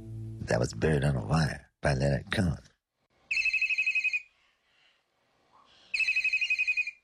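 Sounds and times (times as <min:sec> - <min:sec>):
speech: 0:00.5 - 0:02.7
telephone ringing with incoming call in warbling trill bursts: 0:03.3 - 0:04.3, 0:05.9 - 0:07.0.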